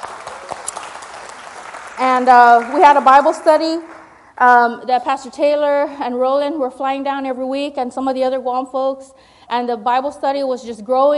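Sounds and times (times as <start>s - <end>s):
audience applauding: 0.0s - 4.2s
speech: 2.0s - 11.1s.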